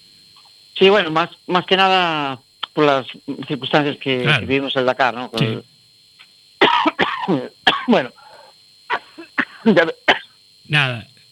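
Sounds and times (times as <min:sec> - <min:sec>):
speech: 0:00.8 - 0:05.7, 0:07.3 - 0:08.2, 0:09.6 - 0:10.1, 0:10.7 - 0:11.1
person clearing throat with raspy vocal clearing: 0:04.2 - 0:04.5, 0:05.4 - 0:05.6, 0:06.6 - 0:08.2, 0:08.9 - 0:10.3
person coughing: 0:04.2 - 0:04.5, 0:05.4 - 0:05.6, 0:06.6 - 0:08.3, 0:08.9 - 0:10.3.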